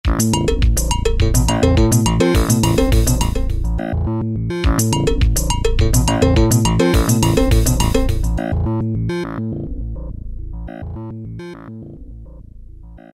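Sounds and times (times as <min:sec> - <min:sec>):
Roland D-110 synthesizer factory patch note: 0:00.1 - 0:09.5.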